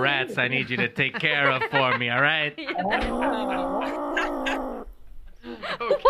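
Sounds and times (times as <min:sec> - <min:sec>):
speech: 0:00.0 - 0:04.2
laughter: 0:00.4 - 0:04.8, 0:05.4 - 0:06.0
angry cat yowling: 0:02.8 - 0:05.0.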